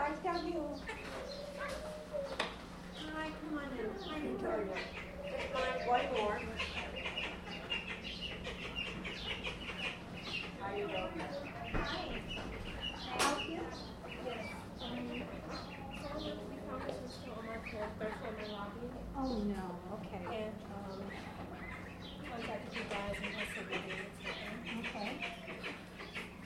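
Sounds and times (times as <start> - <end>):
chickens clucking: 0.0 - 26.4
steady low hum: 0.0 - 26.4
ducks quacking: 3.8 - 16.6, 20.2 - 26.4.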